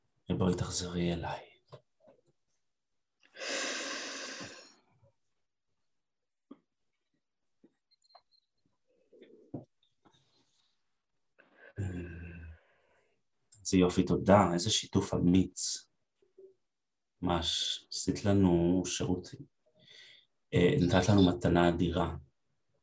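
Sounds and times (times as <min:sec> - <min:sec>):
speech: 0:00.3 - 0:01.5, 0:13.7 - 0:15.9, 0:17.2 - 0:19.6, 0:20.5 - 0:22.2
long loud airy deep breath in: 0:03.3 - 0:04.8
person murmuring: 0:11.8 - 0:12.4.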